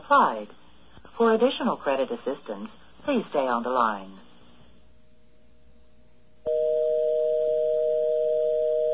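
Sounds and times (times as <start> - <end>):
speech: 0.1 - 0.6, 1.2 - 4.2
telephone busy signal tone on a local calling line: 6.5 - 8.9.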